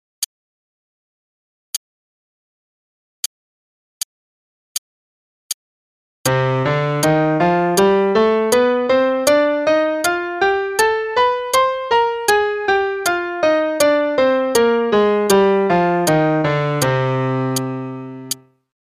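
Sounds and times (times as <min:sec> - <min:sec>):
C melodic minor scale in 8th notes over 2 octaves: 0:06.3 - 0:18.5.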